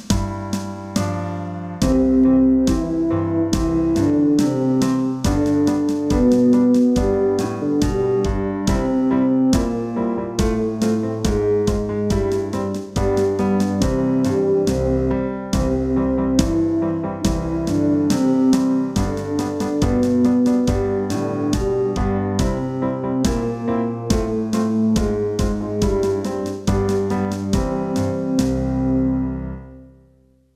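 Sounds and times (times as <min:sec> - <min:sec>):
brass counter melody in B flat: 0:00.1 - 0:30.1.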